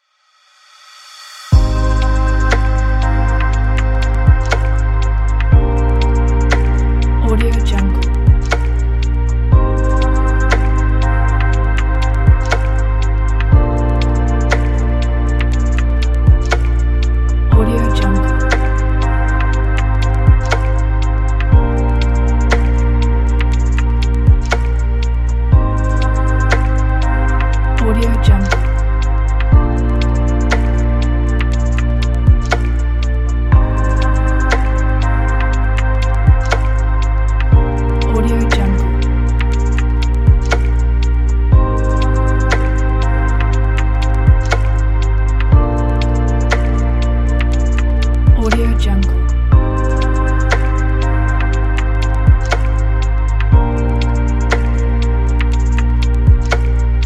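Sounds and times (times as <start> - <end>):
dreamy electronic music: 0.6 - 57.0.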